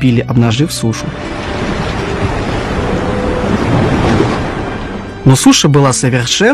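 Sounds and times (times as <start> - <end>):
speech: 0.0 - 1.7, 5.2 - 6.5
wind howling among rocks: 1.1 - 5.3
waves washing onto a sandy shore: 1.2 - 5.1.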